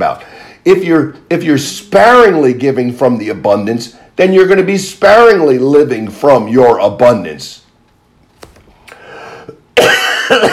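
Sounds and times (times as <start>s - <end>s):
speech: 0.0s - 7.6s, 9.8s - 10.5s
throaty coughing: 9.4s - 10.5s.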